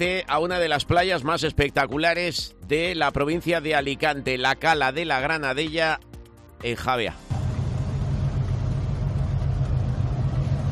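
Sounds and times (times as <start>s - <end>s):
speech: 0.0s - 7.3s
boat engine droning with a deep throbbing rumble: 7.3s - 10.7s.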